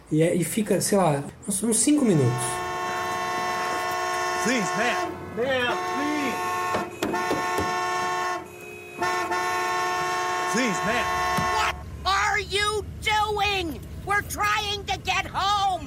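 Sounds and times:
speech: 0.1s - 2.6s, 4.4s - 6.1s, 13.6s - 15.8s
people speaking in short urgent bursts: 0.4s - 2.8s, 4.3s - 6.9s, 10.4s - 15.8s
car horn honked by a woman: 2.0s - 11.9s.

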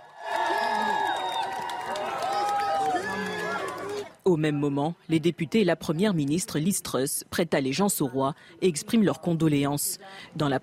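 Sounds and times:
large crowd cheering in the open air at Buckingham Palace in London: 0.0s - 4.2s
scattered applause: 0.0s - 4.2s
speech: 4.3s - 10.6s.

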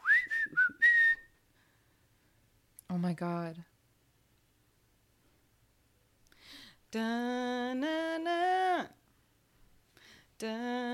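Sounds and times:
person whistling a song's chorus melody: 0.0s - 1.4s
speech: 3.0s - 3.7s, 6.9s - 9.0s, 10.4s - 10.9s.

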